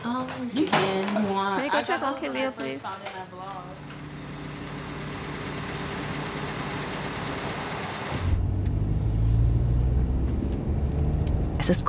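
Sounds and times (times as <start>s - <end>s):
speech: 0.0s - 3.9s, 11.6s - 11.8s
car engine humming while driving: 3.6s - 11.8s.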